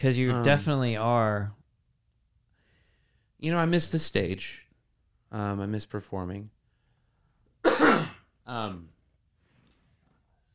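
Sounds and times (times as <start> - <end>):
speech: 0.0 - 1.6, 3.4 - 4.6, 5.3 - 6.6, 8.5 - 8.9
voiced cough-like grunt: 7.6 - 8.3
forceful raspy throat clearing: 7.7 - 8.3.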